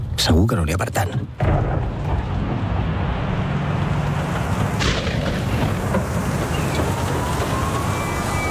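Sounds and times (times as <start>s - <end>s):
speech: 0.2s - 2.3s
sharp crack: 1.4s - 7.5s
heavy rain storm: 1.5s - 8.5s.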